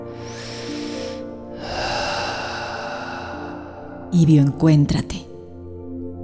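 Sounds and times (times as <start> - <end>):
deep breath during a guided relaxation exercise: 0.0 - 4.2
speech: 4.1 - 5.3.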